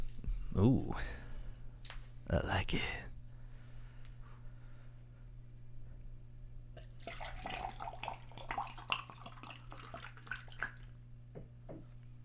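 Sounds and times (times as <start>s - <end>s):
low electrical hum: 0.0s - 12.2s
speech: 0.6s - 1.2s, 2.3s - 3.1s
nitro beer hard-poured upside down from a can into a glass: 6.8s - 11.0s.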